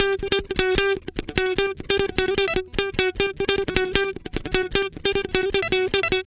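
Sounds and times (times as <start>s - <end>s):
guitar licks: 0.0s - 6.2s.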